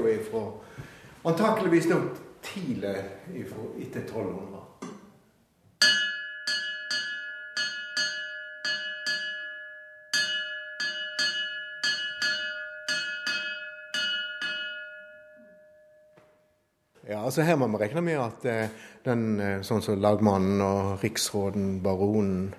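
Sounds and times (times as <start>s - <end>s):
speech: 0.2s - 4.8s, 17.3s - 22.5s
large medieval hanging bell ringing: 5.8s - 16.6s.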